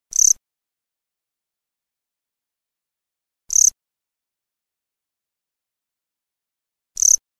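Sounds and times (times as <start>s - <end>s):
kumakoorogi insects chirping: 0.2s - 0.4s, 3.5s - 3.8s, 7.0s - 7.2s.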